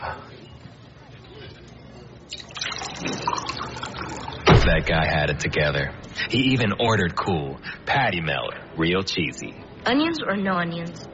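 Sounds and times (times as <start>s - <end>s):
faint murmur: 0.0s - 11.1s
water pouring into a glass: 2.3s - 4.6s
speech: 4.7s - 11.1s.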